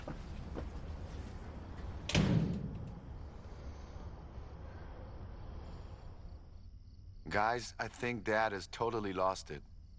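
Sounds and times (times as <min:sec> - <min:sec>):
steady hiss: 0:00.0 - 0:09.9
door shutting with a thud: 0:02.1 - 0:03.0
speech: 0:07.3 - 0:09.7.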